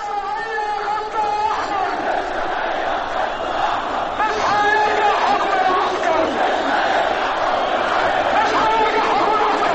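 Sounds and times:
protesters chanting in Tahrir Square in Cairo demanding the president's resignation: 0:00.0 - 0:09.7.

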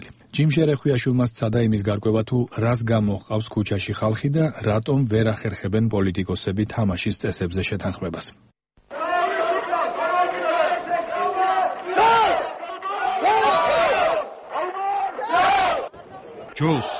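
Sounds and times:
speech: 0:00.4 - 0:08.5, 0:16.6 - 0:16.9
crowd chanting a repeated call at a protest rally in Georgia: 0:08.9 - 0:16.9.

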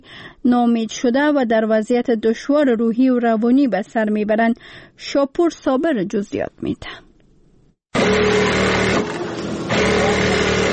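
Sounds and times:
speech: 0:00.4 - 0:07.0
electric sewing machines running in a school tailoring class: 0:08.0 - 0:10.7.

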